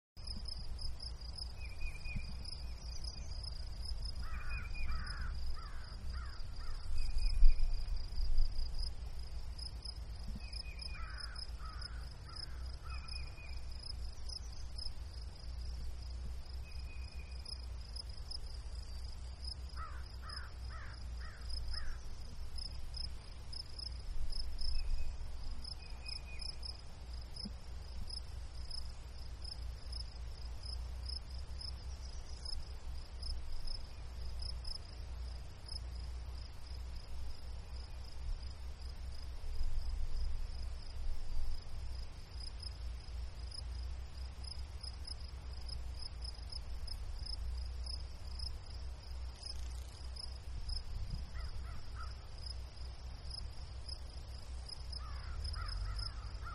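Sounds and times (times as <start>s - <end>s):
meadow crickets chirping outdoors: 0.2s - 56.5s
crow cawing outdoors: 4.2s - 6.8s, 11.0s - 13.1s, 19.8s - 22.0s, 55.0s - 56.5s.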